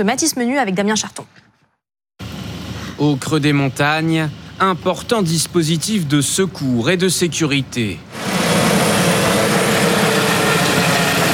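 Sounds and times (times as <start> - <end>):
speech: 0.0 - 1.4, 3.0 - 8.4
rescue helicopter engine and rotor roar during a mountain search and rescue operation: 8.1 - 11.3.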